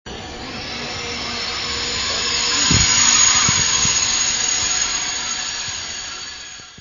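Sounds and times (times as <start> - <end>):
train screeching texture: 0.1 - 6.7.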